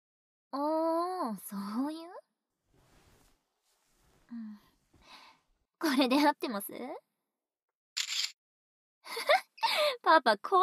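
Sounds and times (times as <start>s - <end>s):
speech: 0.5s - 2.1s, 5.8s - 7.1s, 10.0s - 10.6s
camera shutter releases: 8.0s - 8.4s.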